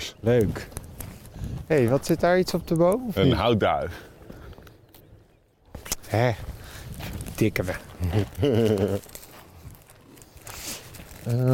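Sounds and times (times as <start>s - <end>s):
footsteps crunching over a sandy dune path: 0.0s - 11.5s
speech: 0.1s - 0.8s, 1.7s - 4.1s, 6.1s - 6.5s, 7.4s - 9.2s, 11.2s - 11.5s
laughter: 8.0s - 9.2s.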